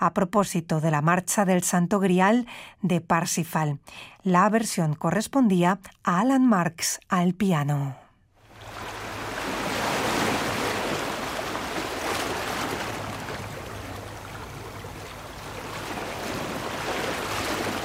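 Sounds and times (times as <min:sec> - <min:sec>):
speech: 0:00.0 - 0:08.0
ocean waves washing onto a shore: 0:08.4 - 0:17.8.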